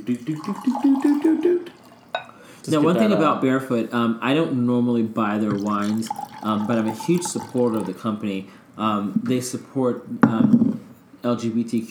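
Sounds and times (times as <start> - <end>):
speech: 0.0 - 1.8, 2.6 - 11.8
Chardonnay wine pouring into a glass for a tasting: 0.0 - 3.3, 5.3 - 8.2.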